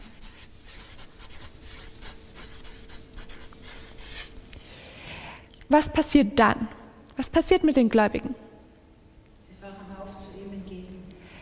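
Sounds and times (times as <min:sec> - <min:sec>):
pen scratching as a word is written by hand: 0:00.0 - 0:04.3
speech: 0:05.7 - 0:08.5.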